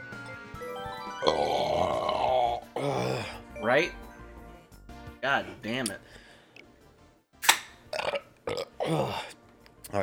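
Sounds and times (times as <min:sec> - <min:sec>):
loud burps: 0:01.2 - 0:03.4, 0:07.9 - 0:09.3
speech: 0:03.8 - 0:04.0, 0:05.2 - 0:06.2.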